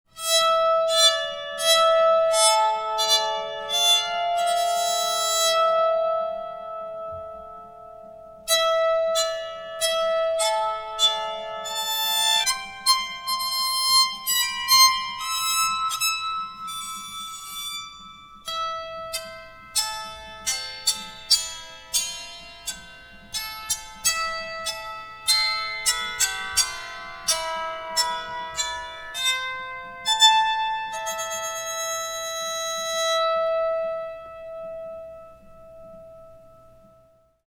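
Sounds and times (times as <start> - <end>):
bowed psaltery: 0.1 - 37.4.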